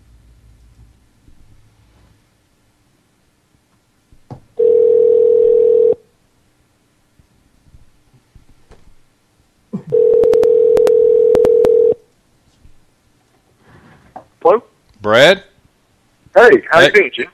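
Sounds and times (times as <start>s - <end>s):
steady telephone dial tone: 4.6s - 6.0s, 9.9s - 12.0s
phone keypad beeps: 10.0s - 12.0s
speech: 14.5s - 15.5s, 16.4s - 17.3s.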